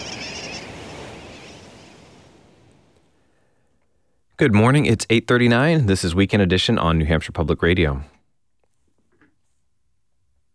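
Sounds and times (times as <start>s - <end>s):
sooty tern colony calling: 0.0s - 1.5s
speech: 4.4s - 8.2s.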